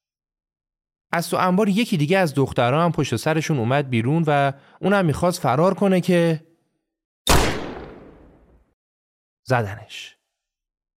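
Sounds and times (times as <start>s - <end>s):
speech: 1.1s - 6.5s, 9.5s - 10.2s
gunshot: 7.3s - 8.6s.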